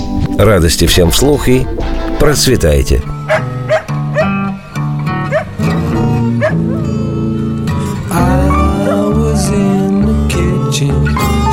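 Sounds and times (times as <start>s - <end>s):
speech: 0.4s - 3.4s
slow blues backing of piano and guitar: 3.1s - 11.5s
hound dog barking and howling: 3.2s - 4.5s, 5.2s - 7.0s, 8.2s - 9.6s, 11.0s - 11.5s.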